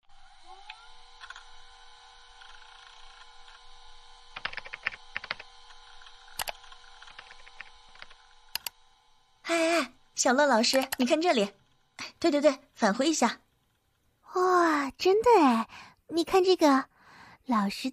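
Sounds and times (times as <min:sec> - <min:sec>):
steady low electronic hum: 0:00.1 - 0:15.8
laptop keyboard typing: 0:01.2 - 0:01.5, 0:04.3 - 0:08.8, 0:10.6 - 0:11.2
speech: 0:10.2 - 0:11.6, 0:12.2 - 0:13.4, 0:15.0 - 0:16.9, 0:17.5 - 0:17.9.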